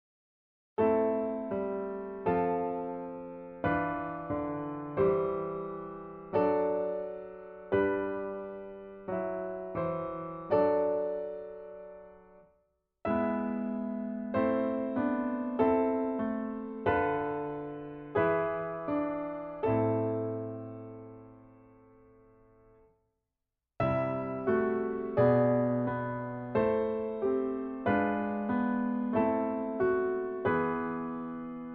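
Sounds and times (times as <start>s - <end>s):
piano chorale: 0.8s - 12.4s, 13.1s - 22.4s, 23.8s - 31.7s.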